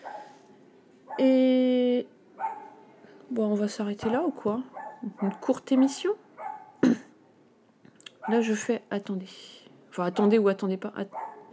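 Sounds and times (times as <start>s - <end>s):
dog barking on a balcony: 0.0s - 0.4s, 1.1s - 1.3s, 2.4s - 2.8s, 4.0s - 6.8s, 8.2s - 8.7s, 10.0s - 10.5s, 11.1s - 11.5s
speech: 1.2s - 2.1s, 3.3s - 6.2s, 8.2s - 11.2s.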